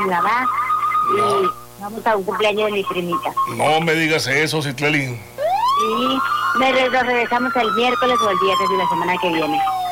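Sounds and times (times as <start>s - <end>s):
ambulance siren passing along a street: 0.0s - 1.6s, 5.4s - 9.9s
speech: 0.0s - 9.7s.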